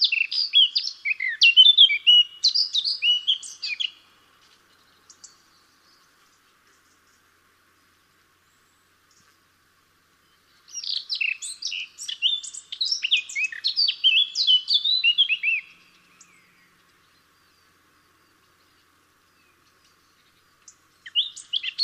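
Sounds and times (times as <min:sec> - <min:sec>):
Eurasian blackcap Sylvia atricapilla singing: 0:00.0 - 0:06.1, 0:10.3 - 0:17.7, 0:18.3 - 0:21.8.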